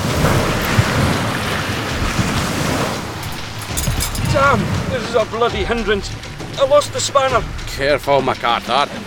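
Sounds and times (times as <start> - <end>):
heavy ocean swells crashing over a landing: 0.0 - 5.3
speech: 4.5 - 9.0.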